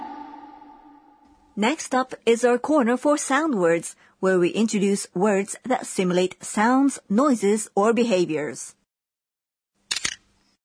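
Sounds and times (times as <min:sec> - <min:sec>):
speech: 0:01.6 - 0:08.8
camera shutter click: 0:09.9 - 0:10.2.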